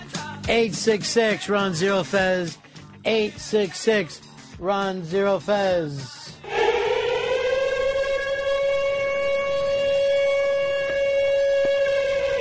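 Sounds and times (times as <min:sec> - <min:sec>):
speech: 0:00.5 - 0:06.2
siren sound effect for a radio show challenge segment: 0:06.4 - 0:12.3.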